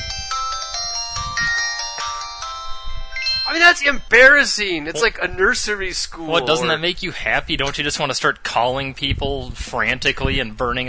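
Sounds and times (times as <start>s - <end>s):
mobile phone power-on jingle: 0.0s - 4.4s
speech: 3.5s - 10.8s.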